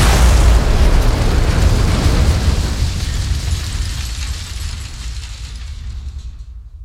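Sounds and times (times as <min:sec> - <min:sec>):
bomb explosion in a museum: 0:00.0 - 0:06.8.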